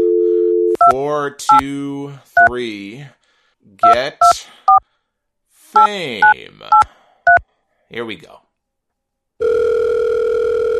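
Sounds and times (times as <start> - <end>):
telephone dial tone: 0.0 - 0.8, 9.4 - 10.7
speech: 0.8 - 4.9, 5.7 - 8.4.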